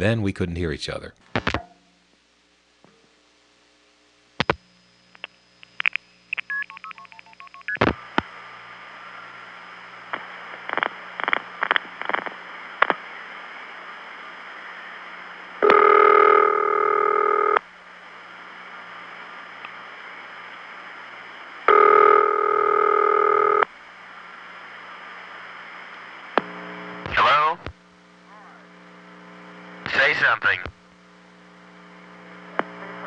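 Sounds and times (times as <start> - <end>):
speech: 0.0 - 1.5
steady telephone buzzing tone: 7.1 - 33.0
telephone line clicks: 15.6 - 16.2.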